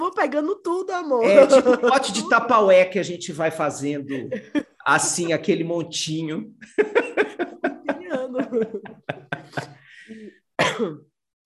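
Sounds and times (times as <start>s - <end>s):
speech: 0.2s - 7.0s, 10.6s - 11.1s
laughter: 1.2s - 2.6s, 4.0s - 5.7s, 6.6s - 10.1s
person coughing: 10.6s - 11.1s.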